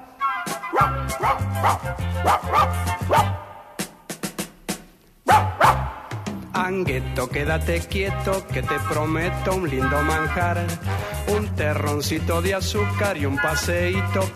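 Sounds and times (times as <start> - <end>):
dog barking furiously: 0.7 - 3.5, 5.2 - 6.0
music with pulsing bass: 0.8 - 3.4, 5.3 - 14.3
speech: 0.8 - 3.4, 6.6 - 14.3.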